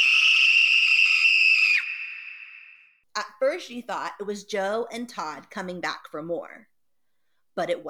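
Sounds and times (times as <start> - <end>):
girl screaming in fright: 0.0 - 2.8
speech: 3.2 - 6.7, 7.6 - 7.8.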